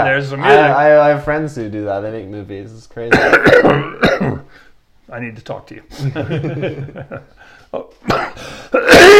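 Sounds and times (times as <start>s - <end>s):
speech: 0.0s - 9.1s
man clearing his throat: 3.1s - 4.5s, 8.0s - 9.1s
man coughing: 3.1s - 4.5s, 8.0s - 9.1s
laughter: 5.9s - 7.9s.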